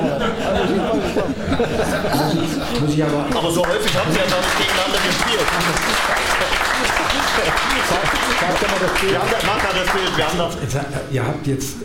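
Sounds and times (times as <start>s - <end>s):
laughter: 0.0s - 11.0s
speech: 2.8s - 11.8s
live audience applause: 3.3s - 10.4s.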